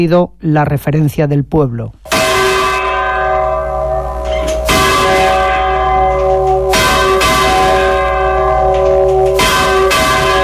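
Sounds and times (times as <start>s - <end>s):
speech: 0.0s - 2.2s
large church bell swinging and tolling: 2.1s - 10.4s.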